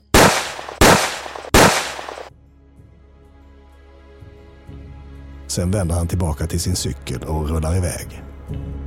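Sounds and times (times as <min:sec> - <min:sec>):
pistol gunshots with tail: 0:00.0 - 0:02.3
speech: 0:05.5 - 0:08.7.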